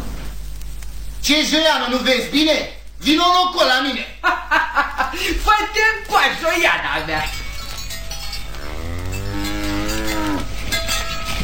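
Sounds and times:
hiss: 0.0 - 11.4
speech: 1.2 - 7.4
laughter: 4.2 - 5.5
cow mooing: 8.4 - 10.6.

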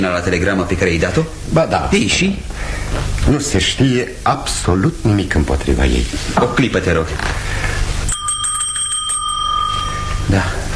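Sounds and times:
speech: 0.0 - 7.4, 10.3 - 10.6
low noise: 0.0 - 10.7
bell rung by a lord to summon his butler: 8.1 - 10.7.

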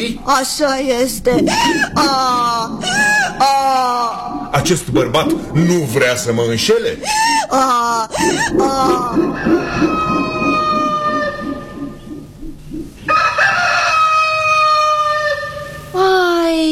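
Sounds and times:
speech: 0.0 - 10.1
voices murmuring: 0.0 - 13.0
rooster crowing: 8.6 - 12.1, 13.0 - 15.9.

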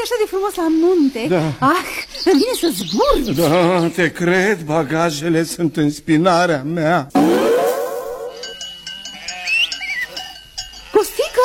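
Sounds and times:
speech: 0.0 - 7.4
faint bell-like clinks: 8.4 - 11.4
flock of sheep bleating in the mountains: 9.0 - 10.2.

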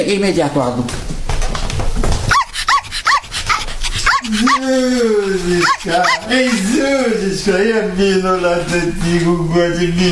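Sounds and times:
speech: 0.0 - 1.0, 4.3 - 10.1
small female dog yipping: 2.3 - 4.6, 5.6 - 6.3
small female dog whimpering: 2.3 - 6.6.

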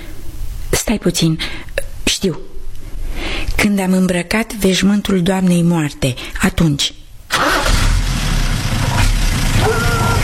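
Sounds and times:
speech: 0.9 - 2.6, 3.6 - 7.0
truck engine starting and rumbling: 7.3 - 10.2.

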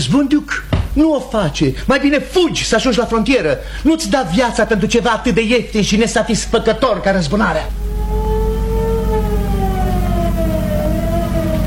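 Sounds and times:
speech: 0.0 - 7.8
heavy low engine rumble: 7.7 - 11.6
police car sirens wailing: 7.8 - 11.6.

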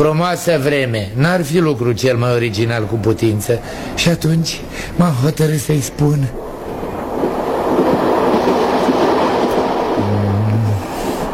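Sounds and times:
speech: 0.0 - 6.5
moving train carriage rumbling: 1.3 - 11.3
low hum: 6.3 - 11.3
train wheels clickety-clack on rails: 6.3 - 11.3.

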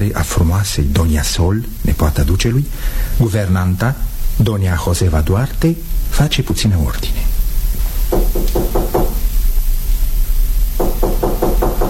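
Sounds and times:
steady hum: 0.0 - 11.8
speech: 0.1 - 7.3
firm knocking on a bedroom door in a palace: 8.1 - 9.2, 10.8 - 11.8.

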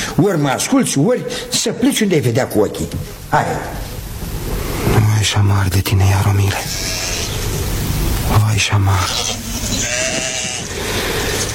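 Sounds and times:
speech: 0.2 - 3.9, 5.2 - 7.0, 8.3 - 10.3
rough noise: 2.0 - 11.5
flock of sheep led by a ram bleating: 6.5 - 7.5, 9.0 - 10.9.

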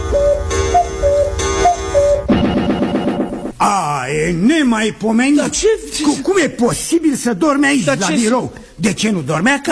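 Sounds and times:
faint tonal ringing: 0.0 - 3.3
clock ticking: 0.0 - 3.6
speech: 4.2 - 9.6.

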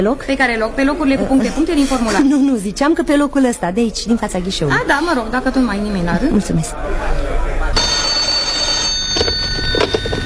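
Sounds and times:
speech: 0.0 - 7.3
faint murmuring voices indoors: 0.0 - 9.8
telephone ringing with a bright electronic tone: 7.8 - 10.2.

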